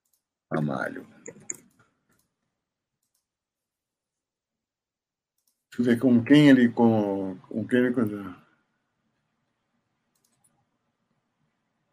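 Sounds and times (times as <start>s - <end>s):
speech: 0.5s - 1.5s, 5.8s - 8.4s
keyboard typing clicks: 1.2s - 2.4s, 3.0s - 3.3s, 5.4s - 5.7s, 10.1s - 10.6s.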